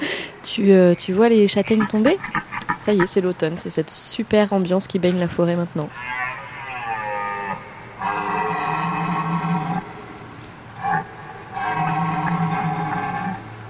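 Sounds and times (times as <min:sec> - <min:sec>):
speech: 0:00.5 - 0:06.2
red deer stag bellowing in rutting season in forest in autumn: 0:05.9 - 0:13.6.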